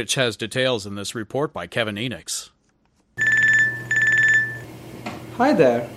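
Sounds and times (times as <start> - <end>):
speech: 0.0 - 2.6, 5.4 - 5.9
battery-free cell phone ringing for an incoming call: 3.2 - 4.7.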